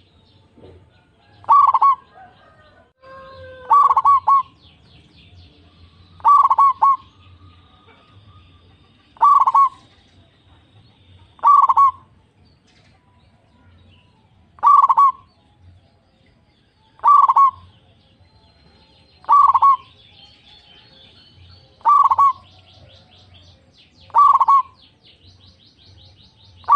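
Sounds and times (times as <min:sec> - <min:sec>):
zebra dove cooing: 0:01.4 - 0:02.1, 0:03.0 - 0:04.6, 0:06.2 - 0:07.1, 0:09.0 - 0:09.9, 0:11.4 - 0:12.1, 0:14.6 - 0:15.3, 0:17.0 - 0:17.7, 0:19.2 - 0:19.9, 0:21.8 - 0:22.5, 0:24.1 - 0:24.8.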